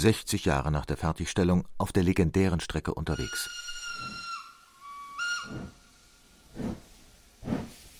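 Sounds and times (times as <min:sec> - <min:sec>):
speech: 0:00.0 - 0:03.6, 0:05.5 - 0:05.8, 0:06.6 - 0:06.8
steam locomotive whistle on the Baghdad Railway in Turkey: 0:03.2 - 0:05.8
chuffing steam of two steam locomotives hauling a train in Turkey: 0:06.4 - 0:07.9.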